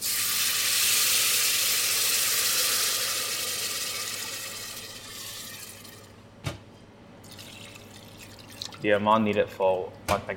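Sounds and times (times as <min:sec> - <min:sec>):
water poured into a hot pan of browned onions and noodle seasoning sizzling: 0:00.0 - 0:06.0
speech: 0:08.8 - 0:10.3.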